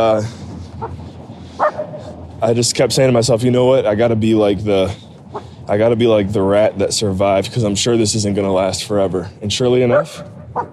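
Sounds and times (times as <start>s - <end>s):
speech: 0.0s - 1.0s, 2.4s - 10.4s
dog barking: 1.6s - 2.1s, 9.9s - 10.7s.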